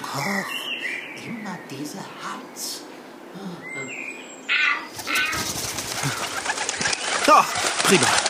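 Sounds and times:
speech: 1.2s - 4.2s, 7.3s - 8.2s
pigeon cooing indoors: 4.6s - 8.2s
pigeon wings flapping indoors: 4.9s - 8.2s.

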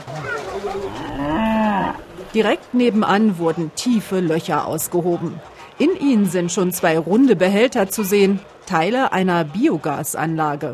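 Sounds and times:
cow mooing: 0.2s - 2.1s
speech: 0.6s - 1.4s, 2.3s - 10.7s.

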